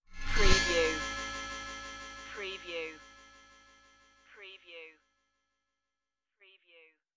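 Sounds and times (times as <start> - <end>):
shiny magic transformation effect: 0.2 - 3.0.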